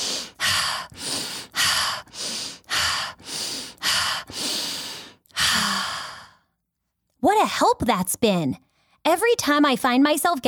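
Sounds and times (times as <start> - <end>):
deep breaths: 0.0 - 6.6
speech: 7.6 - 10.4.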